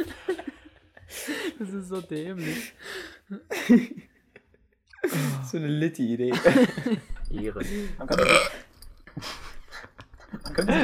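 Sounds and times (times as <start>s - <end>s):
laughter: 0.0s - 5.5s, 6.2s - 8.4s, 9.1s - 10.8s
speech: 1.6s - 4.1s, 5.2s - 8.6s, 9.2s - 9.4s
person burping: 8.0s - 8.7s.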